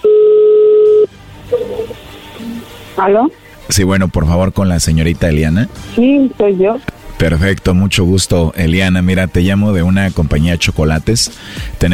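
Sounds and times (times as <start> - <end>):
telephone ringback tone: 0.0 - 2.0
speech: 3.0 - 11.9.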